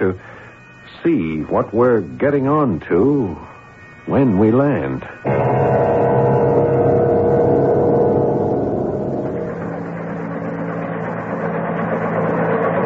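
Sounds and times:
speech: 0.0s - 0.3s, 1.0s - 6.1s
craft's helicopter system droning and hovering after re-entry: 5.1s - 12.8s.

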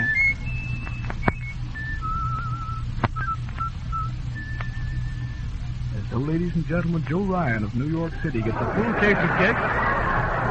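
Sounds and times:
person whistling a tune: 0.0s - 5.5s
steady low hum: 0.0s - 10.4s
speech: 6.1s - 10.4s
laughter: 7.9s - 10.4s.

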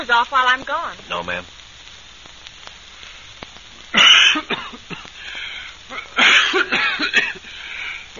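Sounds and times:
speech: 0.0s - 1.6s
person coughing harshly: 4.0s - 5.1s, 5.9s - 7.5s.

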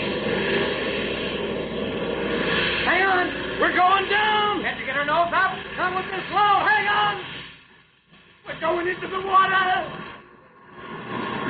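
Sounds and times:
aircraft engine droning on a plane whose port engine is losing oil pressure: 0.0s - 11.4s
speech: 8.6s - 10.1s.

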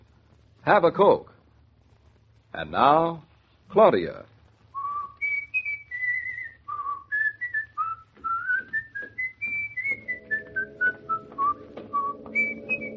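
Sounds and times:
speech: 0.7s - 1.3s, 2.5s - 4.3s
man whistling a clear lilting tune: 4.8s - 12.9s.

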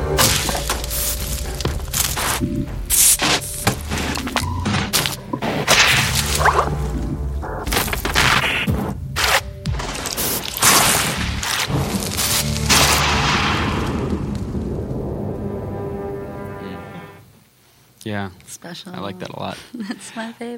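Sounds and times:
sustained low rumbling drone: 0.0s - 8.0s, 11.1s - 17.3s
rhythmic sharp whip-like cracks and bursts: 5.7s - 6.6s, 7.7s - 14.0s
speech: 18.1s - 20.5s.

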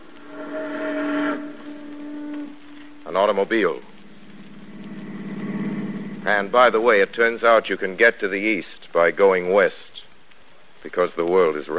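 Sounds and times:
steamboat whistle blast: 0.1s - 3.4s
speech: 3.1s - 3.9s, 6.3s - 10.0s, 10.8s - 11.7s.

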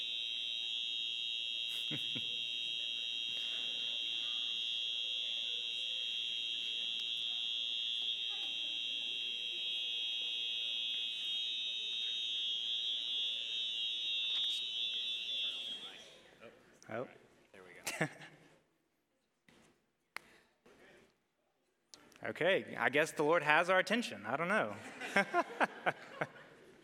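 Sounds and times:
building fire alarm blaring a high-pitched tone: 0.0s - 16.3s
laughter: 1.7s - 4.0s, 17.8s - 18.6s, 24.7s - 26.8s
speech: 16.9s - 17.2s, 18.0s - 18.3s, 22.4s - 26.4s.

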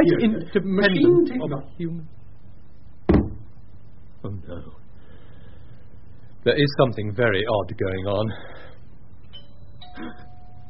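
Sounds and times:
speech: 0.0s - 2.2s, 4.2s - 4.8s, 6.4s - 8.7s, 10.0s - 10.3s
front doorbell electronic chime: 9.3s - 10.6s.

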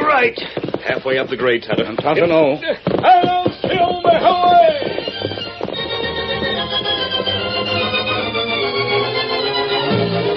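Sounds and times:
large horse galloping through the night urged on by its rider: 0.0s - 10.3s
speech: 0.2s - 5.1s
dense continuous musical backdrop: 3.2s - 10.3s.

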